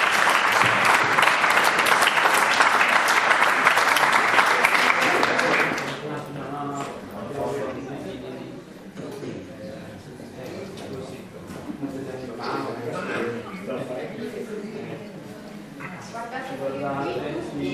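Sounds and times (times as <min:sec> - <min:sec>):
audience applause at a prize-giving ceremony at a fair: 0:00.0 - 0:06.1
murmuring voices and talk: 0:00.0 - 0:17.7.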